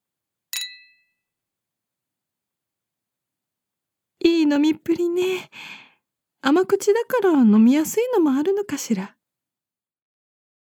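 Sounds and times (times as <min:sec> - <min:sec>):
glasses clinking in a toast: 0:00.6 - 0:01.2
speech: 0:04.5 - 0:05.8, 0:06.4 - 0:09.2.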